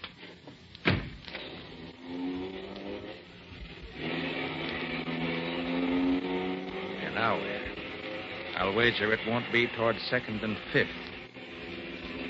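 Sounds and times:
sharp thump: 0.8s - 1.3s
car engine droning as it drives off: 1.3s - 12.2s
speech: 8.7s - 11.1s.

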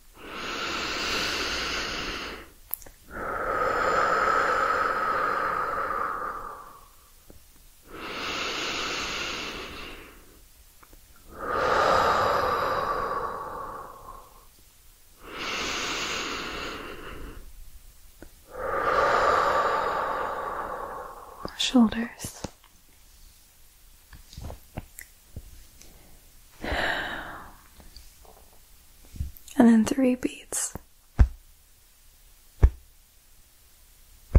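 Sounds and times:
deep breathing during a breathing exercise: 0.0s - 7.2s, 7.9s - 10.4s, 11.2s - 14.5s, 15.2s - 17.6s, 18.4s - 21.7s, 25.8s - 29.4s
speech: 21.7s - 22.4s, 29.8s - 30.7s.

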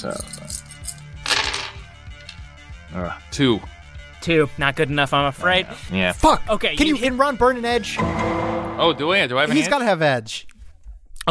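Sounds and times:
speech: 0.0s - 0.6s, 2.9s - 10.5s
eight dice clattering and rattling together: 1.3s - 1.8s.

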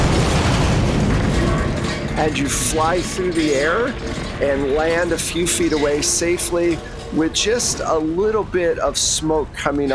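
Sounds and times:
loud rumbling explosion: 0.0s - 7.2s
speech: 2.2s - 9.9s.

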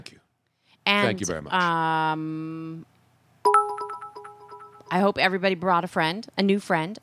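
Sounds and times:
speech: 0.9s - 2.9s, 4.9s - 7.0s
stream bits cheer notification chime: 3.5s - 5.0s
sustained electronic tone: 3.5s - 5.0s.

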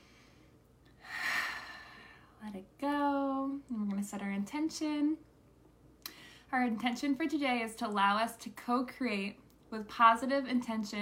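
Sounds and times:
deep breath drawn in during a guided meditation: 0.0s - 2.4s
speech: 2.4s - 3.0s, 4.0s - 5.3s, 6.5s - 10.9s.

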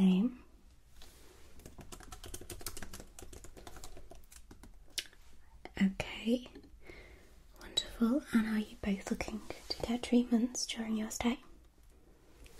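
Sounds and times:
speech: 0.0s - 0.4s, 5.8s - 6.6s, 8.0s - 11.5s
typing on a computer keyboard during a luxury hotel check-in: 1.6s - 4.8s
soft whispering: 5.4s - 6.7s, 7.5s - 11.6s.

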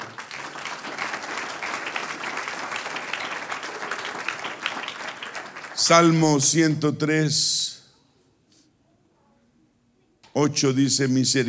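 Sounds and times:
large group applauding: 0.0s - 6.6s
speech: 5.8s - 7.6s, 10.4s - 11.4s.

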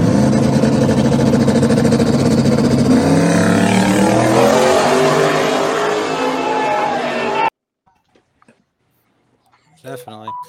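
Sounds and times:
race car engine revving hard on asphalt: 0.0s - 7.5s
race car tires breaking loose on asphalt: 0.5s - 7.5s.

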